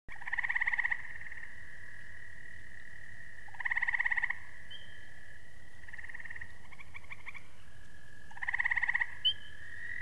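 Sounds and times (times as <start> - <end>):
frog short pulsed rattling bursts: 0.1 - 10.0
faint chirps: 3.4 - 10.0.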